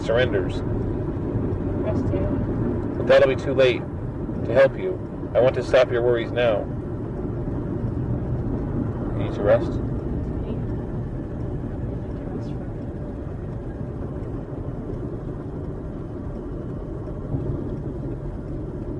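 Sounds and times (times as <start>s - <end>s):
car driving along with engine and road noise: 0.0s - 18.9s
speech: 0.1s - 0.9s, 1.8s - 6.8s, 9.2s - 9.9s.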